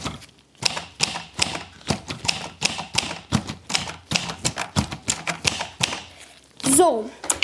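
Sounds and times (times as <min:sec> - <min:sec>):
mechanical typewriter clacking: 0:00.6 - 0:06.1
speech: 0:06.8 - 0:07.3.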